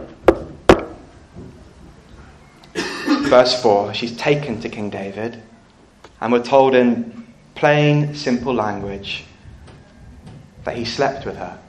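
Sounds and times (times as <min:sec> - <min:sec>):
speech: 0:03.3 - 0:05.6, 0:06.2 - 0:09.3, 0:10.6 - 0:11.6
knocking on a wooden door: 0:08.3 - 0:11.4.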